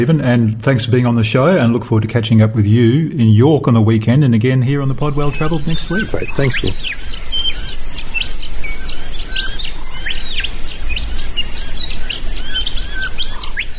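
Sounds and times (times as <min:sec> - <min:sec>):
speech: 0:00.0 - 0:07.8
steady hiss: 0:04.6 - 0:13.7
early morning dawn chorus of many birds in deep Mulga bush country: 0:04.8 - 0:13.7.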